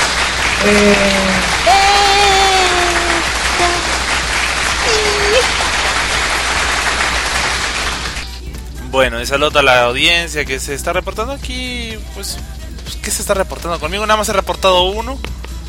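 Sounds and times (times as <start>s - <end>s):
applause sound effect: 0.0s - 8.4s
speech: 0.6s - 1.3s, 9.0s - 15.4s.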